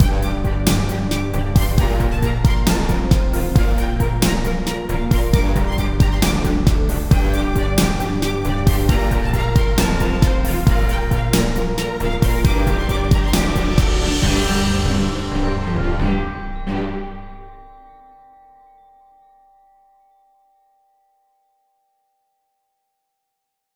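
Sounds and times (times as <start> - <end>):
intense symphonic music: 0.0 - 17.9.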